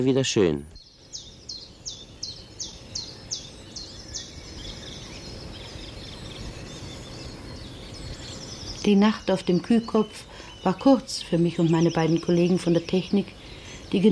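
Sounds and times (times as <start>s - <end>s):
speech: 0.0s - 0.8s, 8.8s - 14.1s
bird singing bright repeated chirping notes: 0.0s - 14.1s.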